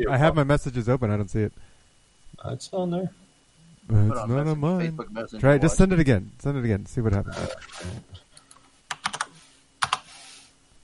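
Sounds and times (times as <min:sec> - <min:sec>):
speech: 0:00.0 - 0:01.7, 0:02.4 - 0:03.2, 0:03.9 - 0:08.2
aggressive typing on a computer keyboard: 0:08.4 - 0:10.1.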